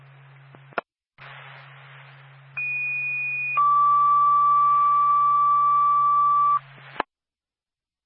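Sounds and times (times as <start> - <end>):
hissing radio channel: 0.5 - 7.1
fire department general alarm dispatch tones over radio: 2.6 - 6.6.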